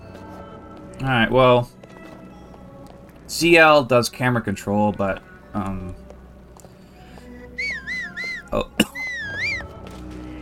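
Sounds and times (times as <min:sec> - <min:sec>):
low video game hum: 0:00.0 - 0:10.3
speech: 0:01.0 - 0:01.8, 0:03.3 - 0:06.0, 0:08.5 - 0:08.7
video game character whistling: 0:07.5 - 0:09.7.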